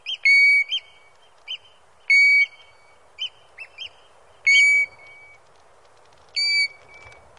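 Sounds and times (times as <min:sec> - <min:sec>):
European golden plover calling with flat pure whistles and short chips: 0:00.0 - 0:02.6, 0:03.2 - 0:05.4, 0:06.4 - 0:06.8
faint background hiss: 0:00.0 - 0:07.3.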